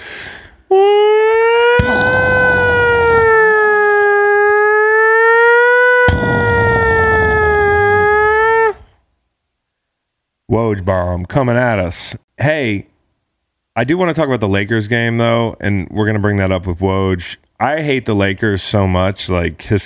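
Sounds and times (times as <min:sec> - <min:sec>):
air raid siren sound effect wailing: 0:01.5 - 0:08.7
speech: 0:10.7 - 0:12.9, 0:13.8 - 0:19.8.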